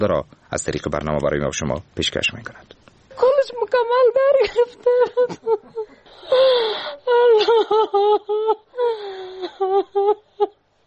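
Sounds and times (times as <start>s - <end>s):
speech: 0.0s - 2.8s, 3.7s - 10.5s
mother wailing and sobbing in grief: 3.9s - 10.6s.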